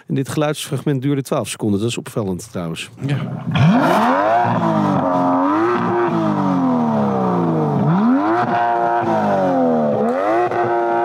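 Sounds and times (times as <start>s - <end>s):
speech: 0.1s - 6.0s
Aston Martin 5.2-litre V12 engine of 608 hp revving: 3.2s - 11.0s.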